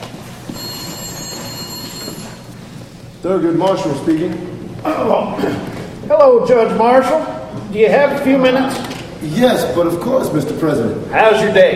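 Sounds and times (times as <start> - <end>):
telephone ringing in a federal court judge's chambers: 0.4 - 2.6
speech: 3.2 - 11.7.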